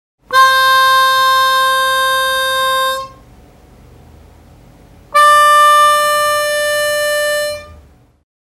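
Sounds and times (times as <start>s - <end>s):
harmonica hole 4 blowing and drawing: 0.3s - 3.2s, 5.2s - 7.8s.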